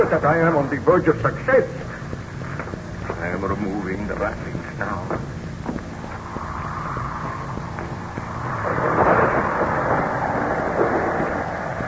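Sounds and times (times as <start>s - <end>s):
speech: 0.0s - 1.9s, 4.1s - 5.3s
wind and rain rushing: 5.3s - 11.8s
storm thunder rumbling: 5.6s - 11.8s.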